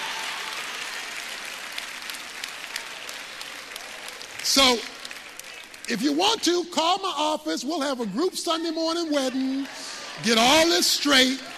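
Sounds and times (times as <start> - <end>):
thin scattered audience applause: 0.0 - 7.1, 7.8 - 11.5
speech: 4.5 - 4.9, 5.9 - 11.5.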